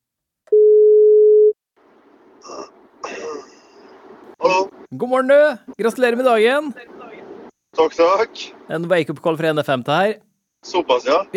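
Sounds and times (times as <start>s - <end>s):
quiet telephone line noise: 0.5s - 1.5s
telephone ringing tone during outgoing call: 0.5s - 1.6s
speech: 4.9s - 6.9s, 7.8s - 11.3s.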